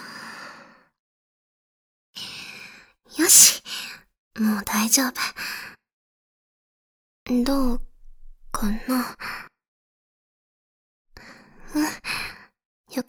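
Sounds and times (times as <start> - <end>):
deep breathing: 3.2 - 3.6
speech: 4.4 - 5.7, 7.3 - 7.9, 8.5 - 9.5, 11.7 - 12.3.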